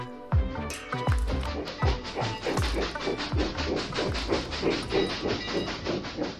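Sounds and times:
clanking metal: 0:00.6 - 0:06.3
steam locomotive chugging at a cement factory in São Paulo: 0:00.7 - 0:06.3
steam locomotive wheels rumbling: 0:01.1 - 0:06.3
steam locomotive hissing steam: 0:01.6 - 0:06.3.

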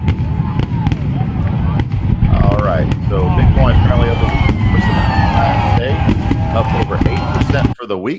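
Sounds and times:
dense rumbling background: 0:00.0 - 0:07.8
fireworks crackling and popping: 0:00.0 - 0:07.8
speech: 0:07.9 - 0:08.1.

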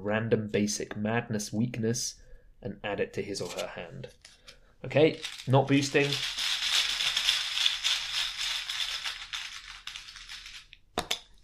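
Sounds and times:
speech: 0:00.0 - 0:06.4
deck of basic weakness cards being shuffled: 0:03.4 - 0:11.4.

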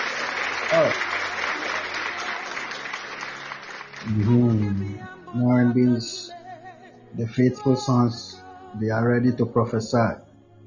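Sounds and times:
congregation clapping hands during a church service: 0:00.0 - 0:05.0
speech: 0:00.7 - 0:01.2, 0:04.1 - 0:04.7, 0:05.6 - 0:06.3, 0:07.2 - 0:10.2.

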